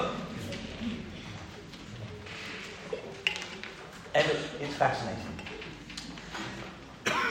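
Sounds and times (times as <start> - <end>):
person coughing: 0.0 - 0.4, 7.0 - 7.2
speech: 4.2 - 5.4.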